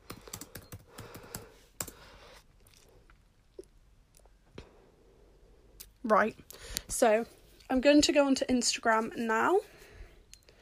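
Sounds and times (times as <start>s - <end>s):
typing on a computer keyboard: 0.0s - 2.0s
speech: 6.1s - 9.8s.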